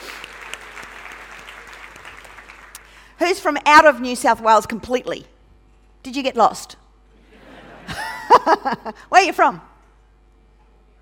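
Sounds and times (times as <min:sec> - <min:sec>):
audience applause at a live comedy show: 0:00.0 - 0:03.0
speech: 0:03.2 - 0:05.3, 0:06.0 - 0:06.8, 0:08.4 - 0:09.7
laughter: 0:07.2 - 0:09.1.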